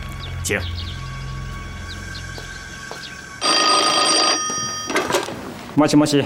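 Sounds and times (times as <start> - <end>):
speech: 0.4 - 1.0, 5.8 - 6.2
telephone ringing heard through a phone line: 3.4 - 5.7.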